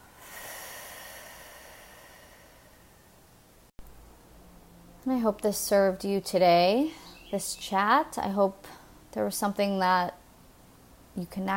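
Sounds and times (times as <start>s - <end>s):
deep guided breath in and out: 0.0s - 3.3s
speech: 5.0s - 10.2s, 11.2s - 11.5s.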